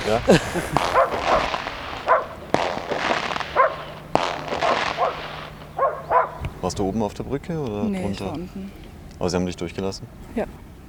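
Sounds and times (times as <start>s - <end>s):
laughter: 0.0s - 1.8s, 6.5s - 10.5s
sharp cracking bangs: 0.0s - 7.8s
dogs barking: 0.0s - 9.1s
noisy outdoor background: 0.0s - 10.8s
speech: 0.1s - 1.0s, 6.7s - 10.6s.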